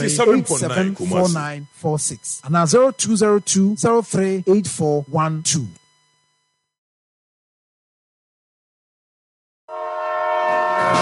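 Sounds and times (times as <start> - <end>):
speech: 0.0 - 5.8
loud train horn blasting: 9.7 - 11.0.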